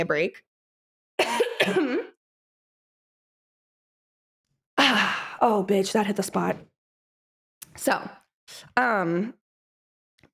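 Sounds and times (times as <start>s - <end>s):
speech: 0.0s - 0.5s, 1.2s - 2.1s, 4.9s - 6.7s, 7.8s - 9.4s
person coughing: 1.2s - 2.2s.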